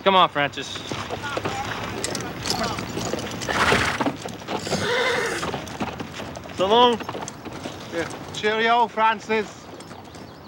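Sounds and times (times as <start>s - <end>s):
speech: 0.0s - 1.6s, 6.6s - 7.2s, 7.9s - 9.6s
police horse hoofbeats clip-clopping through a park: 0.0s - 10.4s
police horses whinnying in a park: 1.2s - 8.3s.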